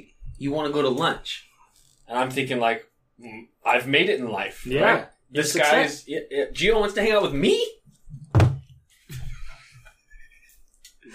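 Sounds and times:
speech: 0.4 - 1.5, 2.1 - 7.8
beer bottle slammed down on a table: 8.3 - 8.7
soft knock: 8.4 - 8.7.

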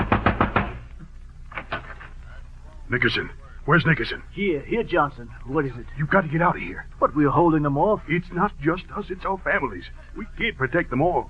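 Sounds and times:
fist pounding urgently on a door: 0.0 - 0.8
speech: 2.9 - 11.2.

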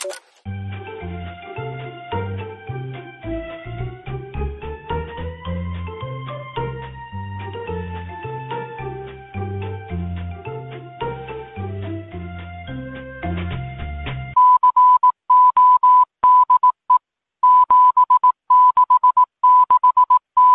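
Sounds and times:
mellow tonal music: 0.0 - 14.4
Morse code beeps: 14.4 - 20.5.

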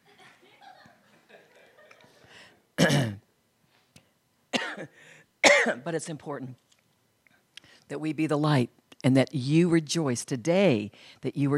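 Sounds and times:
laughter: 0.0 - 2.3
loud harsh coughing and throat clearing: 2.8 - 3.3, 4.5 - 5.8
speech: 4.8 - 6.7, 7.9 - 11.5.

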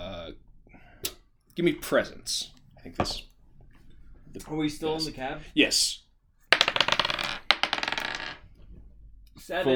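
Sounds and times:
speech: 1.6 - 3.3, 4.3 - 6.0, 9.4 - 9.7
dice rolling on a hard table: 6.5 - 8.8.

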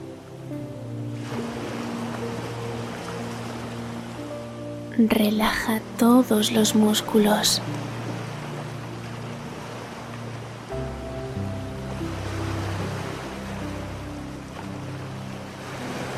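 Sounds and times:
ocean surf waves: 0.0 - 16.1
soft sustained musical tones: 0.0 - 16.1
speech: 5.0 - 7.9.

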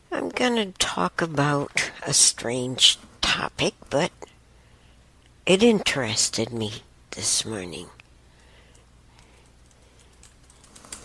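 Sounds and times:
speech: 0.4 - 4.3, 5.5 - 8.0
soft quick typing on a keyboard: 9.3 - 11.0.

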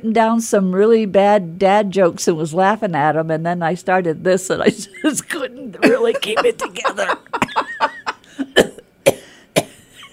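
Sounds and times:
speech: 0.0 - 7.8
laughter: 5.8 - 8.6
deliberate exaggerated fake coughs: 8.3 - 10.1.

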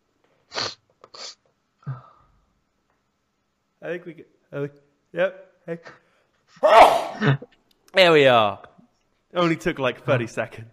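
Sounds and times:
speech: 3.8 - 6.0, 6.6 - 8.7, 9.3 - 10.7
loud sneeze: 6.6 - 7.4.

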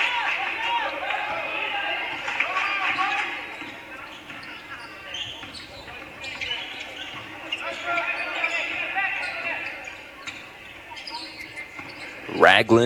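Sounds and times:
crowd noise and chatter: 0.0 - 12.8
shoes squeaking on a basketball court: 0.6 - 12.8
basketball dribbling on a court during a game: 4.1 - 7.4
commentator talking: 12.3 - 12.8.

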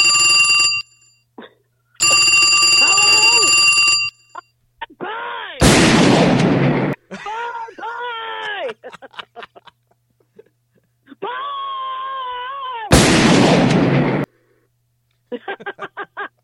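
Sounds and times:
telephone ringing: 0.0 - 1.2, 2.0 - 4.5
burst of noise: 5.6 - 7.0, 12.9 - 14.3
laughter: 7.1 - 11.4, 15.3 - 16.4.

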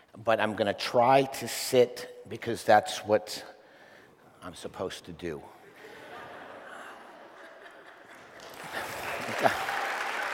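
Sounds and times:
speech: 0.2 - 3.5, 4.4 - 5.6, 9.4 - 9.7
laughter: 5.6 - 9.9
audience applause from a sizable crowd: 7.6 - 10.3.

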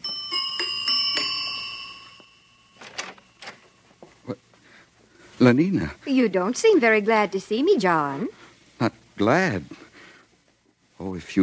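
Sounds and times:
apartment door buzzer ringing: 0.0 - 3.9
speech: 5.4 - 9.8, 11.0 - 11.4.

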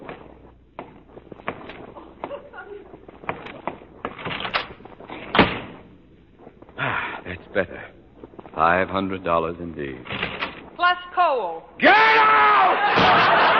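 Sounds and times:
footsteps crossing a room: 0.0 - 11.2
door shutting with a soft dull thud: 3.4 - 5.9, 10.0 - 10.8
speech: 7.6 - 7.9, 8.6 - 10.2, 10.9 - 13.5.

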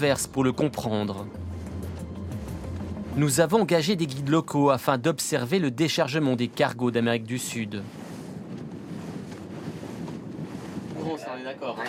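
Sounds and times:
speech: 0.0 - 1.5, 3.2 - 8.0
small boat engine rumble in harbour water: 0.0 - 4.7, 5.3 - 11.8
wind buffeting the microphone: 5.9 - 11.8.

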